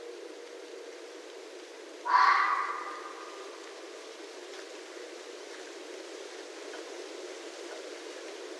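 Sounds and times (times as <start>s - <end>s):
low steady noise: 0.0s - 8.5s
red fox screaming call: 2.0s - 3.6s.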